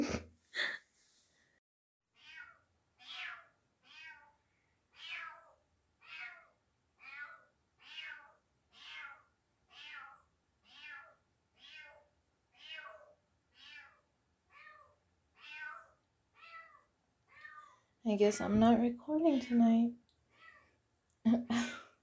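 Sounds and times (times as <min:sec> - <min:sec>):
stray cat meowing on a balcony: 0:02.2 - 0:04.4, 0:05.0 - 0:17.8, 0:20.3 - 0:20.7
speech: 0:18.1 - 0:20.0.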